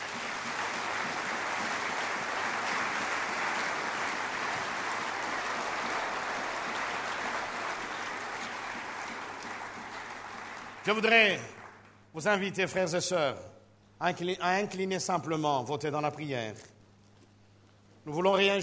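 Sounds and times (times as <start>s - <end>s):
church congregation applauding: 0.0s - 12.2s
speech: 10.8s - 11.6s, 12.2s - 16.7s, 18.0s - 18.6s.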